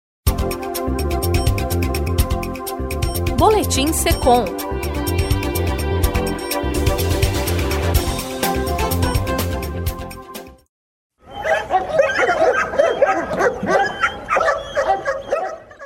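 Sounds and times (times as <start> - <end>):
music: 0.3 - 10.7
speech: 3.4 - 4.7
several police dogs barking loudly and rapidly: 11.2 - 15.8.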